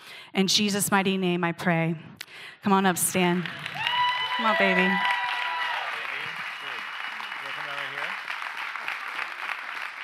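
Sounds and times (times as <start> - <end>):
speech: 0.3 - 3.8, 4.4 - 5.1
large audience applause: 3.4 - 10.0.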